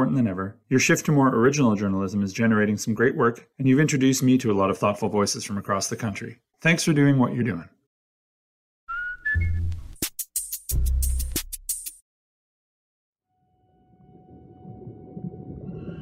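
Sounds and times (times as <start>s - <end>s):
speech: 0.0s - 7.8s
orca killer whale short rising whistle: 8.9s - 9.7s
quieter underwater rumble: 13.8s - 15.9s.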